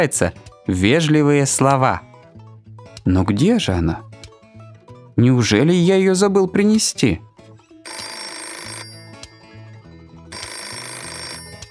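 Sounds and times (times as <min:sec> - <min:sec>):
speech: 0:00.0 - 0:02.1, 0:03.0 - 0:04.1, 0:05.2 - 0:07.3
telephone bell ringing: 0:07.7 - 0:11.6.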